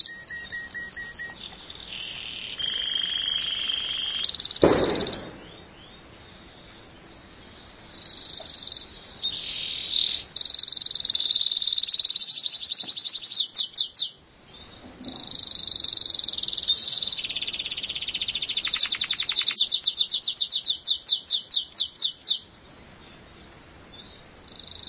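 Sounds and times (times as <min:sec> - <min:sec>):
canary singing: 0:00.0 - 0:24.8.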